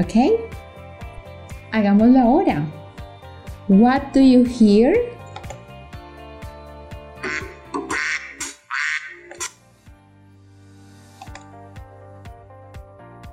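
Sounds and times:
speech: 0.0s - 0.6s, 1.7s - 2.8s, 3.7s - 5.1s
duck quacks: 7.2s - 9.5s
rhythmic ticking: 7.2s - 9.5s.

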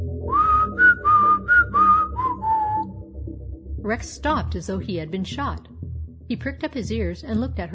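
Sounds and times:
person whistling a lizard's call: 0.3s - 3.0s
speech: 3.9s - 5.7s, 6.3s - 7.7s.

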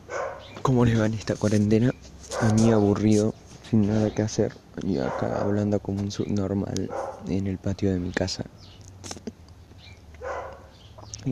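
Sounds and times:
dog barking and whining: 0.0s - 0.6s, 2.3s - 3.0s, 5.0s - 5.7s, 6.8s - 7.3s, 10.2s - 10.8s
low outdoor hum: 0.0s - 11.3s
speech: 0.7s - 8.5s.

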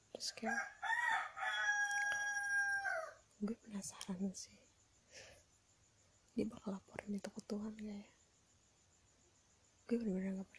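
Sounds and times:
speech: 0.2s - 0.8s, 3.4s - 5.4s, 6.4s - 8.1s, 9.9s - 10.5s
rooster crowing: 0.4s - 3.2s.

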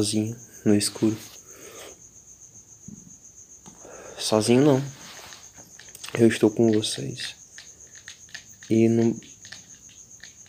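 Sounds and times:
speech: 0.0s - 1.4s, 4.2s - 5.0s, 6.1s - 7.4s, 8.7s - 9.3s
cricket chirping in a high-pitched trill: 0.0s - 10.4s
soft rustling: 4.4s - 6.8s.

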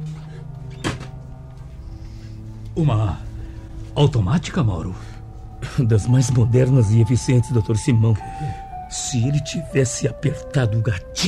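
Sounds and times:
steady low hum: 0.0s - 9.7s
door shutting with a dull thud: 0.1s - 1.2s
speech: 2.8s - 3.3s, 4.0s - 5.1s, 5.7s - 11.2s.

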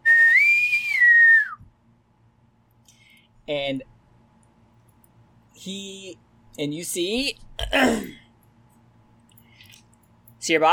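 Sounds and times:
sustained whistle: 0.0s - 1.7s
speech: 3.5s - 3.9s, 5.6s - 8.2s, 10.4s - 10.7s.

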